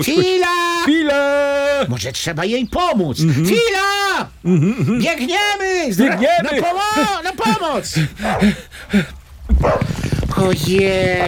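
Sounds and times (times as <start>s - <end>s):
laughter: 0.0s - 1.1s, 6.0s - 9.1s
speech: 0.0s - 11.2s
rough noise: 7.4s - 11.2s
distressed dog yelping: 9.6s - 9.9s.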